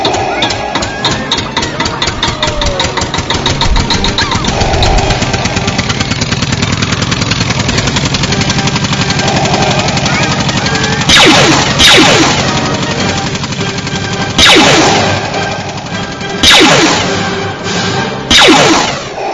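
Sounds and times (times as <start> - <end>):
car engine cranking to start: 0.0 - 19.2.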